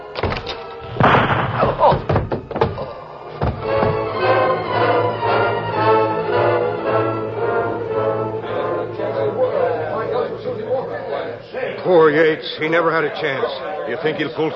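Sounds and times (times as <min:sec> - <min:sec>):
door opening: 0:00.2 - 0:04.2
sharp hollow knocks: 0:01.0 - 0:04.2
murmur of voices: 0:05.1 - 0:14.5
speech: 0:12.1 - 0:14.5.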